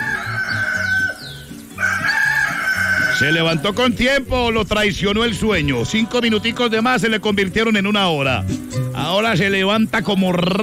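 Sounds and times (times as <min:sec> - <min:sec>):
rooster crowing: 0:00.0 - 0:03.7
speech: 0:03.2 - 0:10.6.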